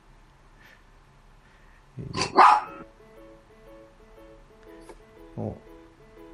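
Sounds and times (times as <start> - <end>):
speech: 2.0 - 2.2
neighbor's dog barking: 2.2 - 2.8.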